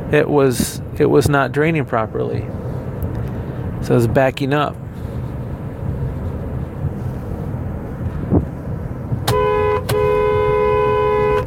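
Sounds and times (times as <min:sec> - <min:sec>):
steady road and engine noise: 0:00.0 - 0:11.4
speech: 0:00.1 - 0:02.6, 0:03.8 - 0:04.8
car horn honking while driving past a house: 0:09.2 - 0:11.4.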